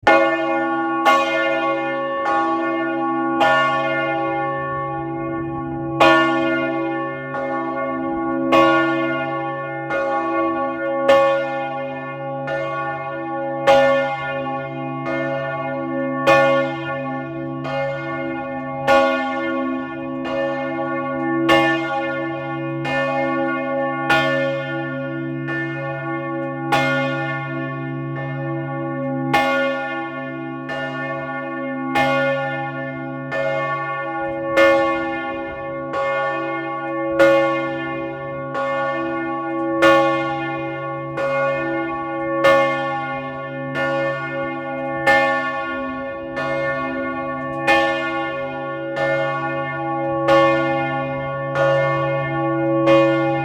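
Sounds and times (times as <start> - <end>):
bells ringing: 0.1 - 53.4.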